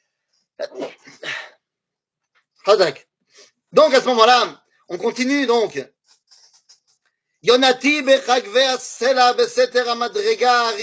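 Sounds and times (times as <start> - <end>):
single loud breathy sneeze: 0.6 - 1.5
speech: 2.7 - 3.1, 3.7 - 6.0, 7.4 - 10.8.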